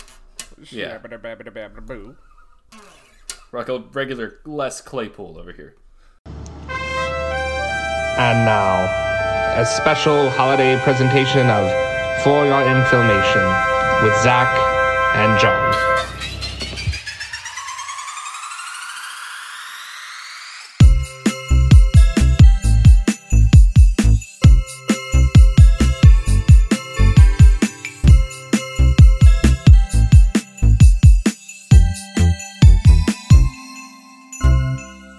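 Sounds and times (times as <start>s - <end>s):
speech: 0.6s - 2.9s, 3.5s - 5.8s, 8.2s - 15.9s
shimmering rising sweep: 6.6s - 20.8s
chime bells melody: 7.2s - 16.3s, 20.8s - 35.1s.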